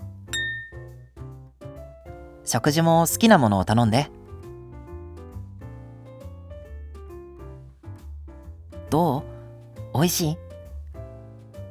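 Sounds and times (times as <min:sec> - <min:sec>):
glasses clinking in a toast over a restaurant meal: 0:00.4 - 0:00.8
speech: 0:02.5 - 0:04.2, 0:10.0 - 0:10.4.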